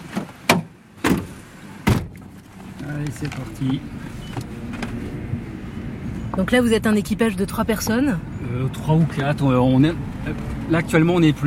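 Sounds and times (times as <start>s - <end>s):
patrol car doors slamming shut on an island: 0.1s - 2.3s
speech: 2.9s - 4.5s, 6.4s - 11.4s.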